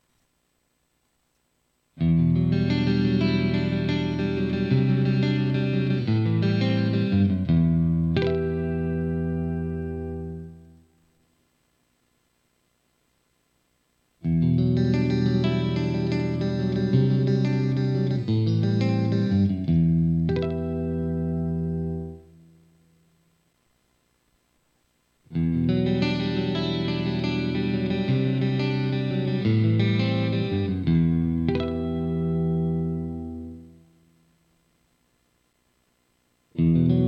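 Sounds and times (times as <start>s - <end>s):
clean electric guitar through split mini humbucker pickup: 2.0s - 11.1s, 14.2s - 23.2s, 25.3s - 34.3s, 36.5s - 37.0s.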